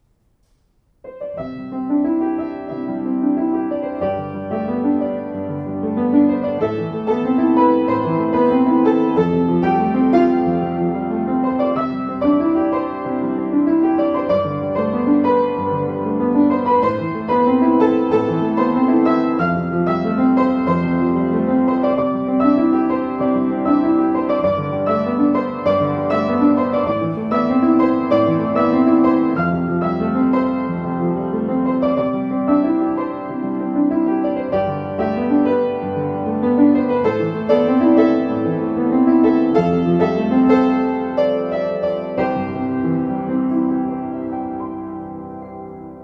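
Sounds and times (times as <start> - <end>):
Schimmel piano: 0.0 - 46.0.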